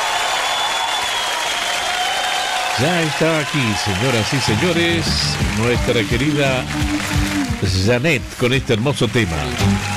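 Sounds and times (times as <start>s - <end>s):
audience ovation at a classic-hits disco show: 0.0s - 9.9s
speech: 2.8s - 9.9s.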